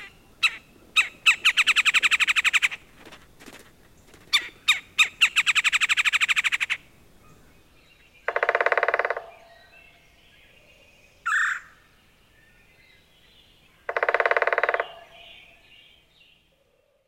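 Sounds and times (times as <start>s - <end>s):
red-bellied woodpecker rattling rolls: 0.0s - 2.8s, 3.5s - 7.4s, 8.2s - 9.6s, 11.2s - 11.7s, 13.8s - 15.5s.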